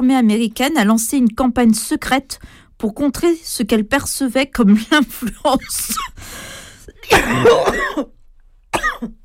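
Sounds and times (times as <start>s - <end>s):
speech: 0.0s - 8.2s, 9.0s - 9.2s
harsh coughing: 7.0s - 8.2s, 8.8s - 9.2s.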